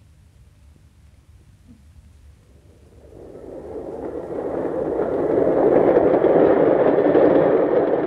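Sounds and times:
train arriving at station platform: 2.4s - 8.0s.

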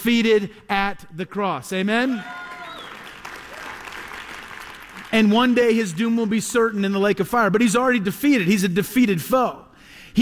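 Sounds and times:
speech: 0.0s - 2.5s, 5.1s - 10.2s
audience applause: 2.3s - 5.3s.

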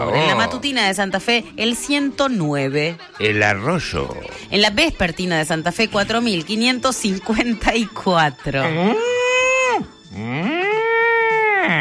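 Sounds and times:
speech: 0.1s - 9.2s
cow mooing sound effect: 8.6s - 11.7s.

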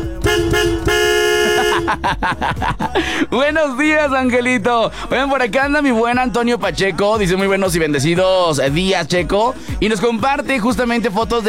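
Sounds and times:
car horn honking: 0.0s - 2.0s
laughter: 1.4s - 3.4s
speech: 3.3s - 11.4s.

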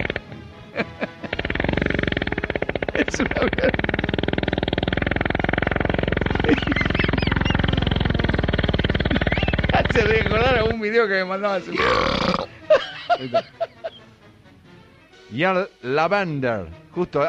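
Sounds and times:
man burping in a played video: 0.0s - 10.0s, 11.7s - 12.6s
laughter: 0.6s - 1.5s, 3.0s - 3.8s, 6.0s - 8.3s, 12.5s - 14.1s
speech: 3.1s - 3.8s, 10.8s - 13.6s, 15.3s - 17.2s.

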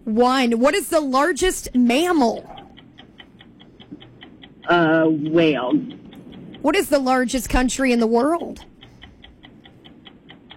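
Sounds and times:
quiz game timer ticking: 0.0s - 10.5s
speech: 0.1s - 2.6s, 4.7s - 6.0s, 6.6s - 8.7s.

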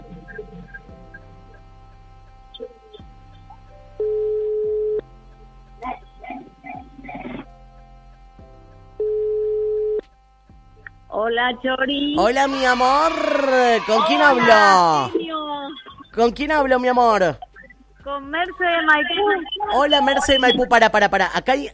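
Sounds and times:
music playing: 0.0s - 21.7s
telephone ringback tone while dialing a caller: 4.0s - 5.0s, 9.0s - 10.0s
speech: 11.3s - 15.2s, 16.2s - 17.4s, 18.1s - 21.7s.

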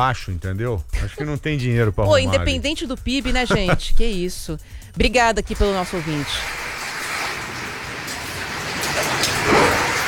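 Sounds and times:
speech: 0.0s - 6.7s
laughter: 0.9s - 4.2s
rain falling across São Paulo: 5.7s - 10.0s.

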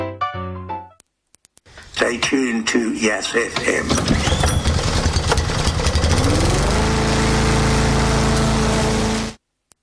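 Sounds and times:
speech: 2.0s - 4.6s
lawn mower engine roaring: 3.4s - 9.4s.

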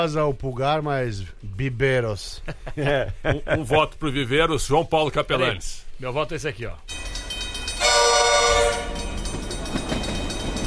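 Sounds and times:
speech: 0.0s - 7.1s
laughter: 2.4s - 3.9s
train rolling along the tracks: 6.9s - 10.6s
train horn: 7.8s - 9.2s.

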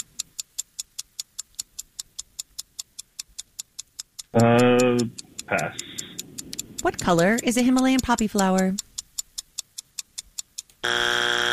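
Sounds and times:
sharp countdown clock ticks: 0.0s - 11.5s
speech: 4.3s - 5.9s, 6.8s - 8.8s
quiz game time-up buzzer: 10.8s - 11.5s.

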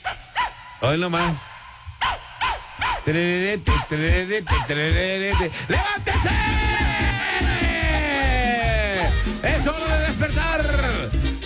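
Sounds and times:
short loud dog-like barks in a rhythmic pattern: 0.1s - 0.6s, 2.0s - 3.1s
speech: 0.8s - 1.5s, 3.1s - 6.8s, 9.4s - 11.2s
bouncy dance track: 3.0s - 11.4s.

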